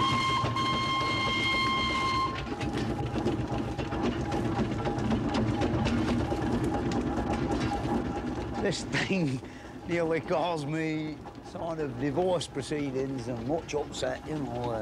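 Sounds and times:
steam engine whistle-like tone: 0.0s - 2.5s
steeplejack's steam engine chuffing: 0.0s - 14.8s
speech: 8.7s - 14.8s.

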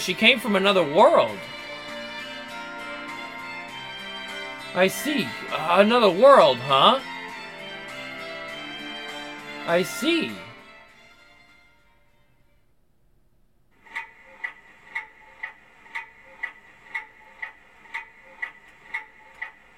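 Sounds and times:
speech: 0.0s - 1.6s, 4.7s - 7.1s, 9.6s - 10.4s
clock second hand ticking loudly: 0.0s - 8.9s, 13.8s - 19.7s.

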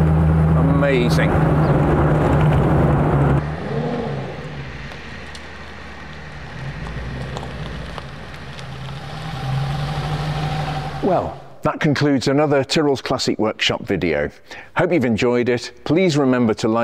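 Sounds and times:
classic car engine idling at about 600 RPM: 0.0s - 11.6s
speech: 0.8s - 2.3s, 11.1s - 16.8s.

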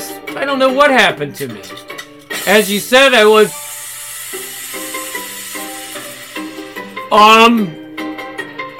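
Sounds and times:
speech: 0.4s - 3.6s, 7.1s - 7.8s
shaken drink can cracking open with fizzing spray: 2.2s - 7.1s.

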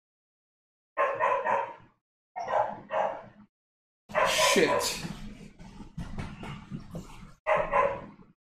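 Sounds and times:
dog barking outside: 1.0s - 3.4s, 4.1s - 5.0s, 7.5s - 8.3s
speech: 4.6s - 5.2s.

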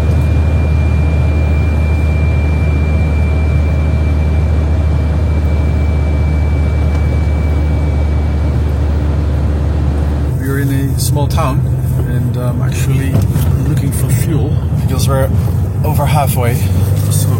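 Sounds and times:
constant broadband rumble of car engine and road noise: 0.0s - 17.3s
high-pitched whine from a car's gearbox under load: 0.0s - 17.3s
speech: 11.0s - 11.7s, 12.5s - 13.5s, 15.0s - 15.4s, 16.0s - 17.3s.

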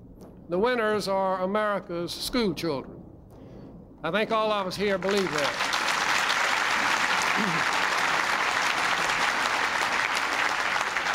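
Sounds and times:
speech: 0.5s - 3.0s, 4.0s - 5.7s, 7.4s - 7.8s
large enthusiastic crowd applauding at a celebration: 4.8s - 11.1s.

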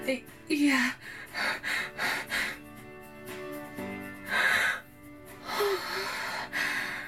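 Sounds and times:
speech: 0.0s - 2.4s
person panting heavily after running: 1.0s - 3.0s, 4.2s - 7.0s.

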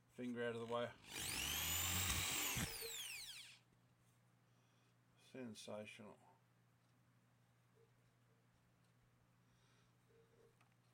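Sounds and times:
speech: 0.2s - 1.3s, 5.3s - 6.3s
power drill drilling through timber: 1.0s - 3.6s.

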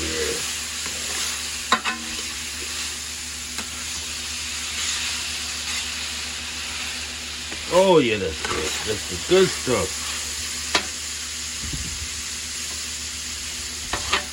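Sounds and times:
food frying in a pan: 0.0s - 14.3s
utensil scraping and knocking in a pan while stirring food: 0.4s - 7.1s, 8.4s - 10.9s, 13.9s - 14.3s
speech: 7.7s - 10.2s.

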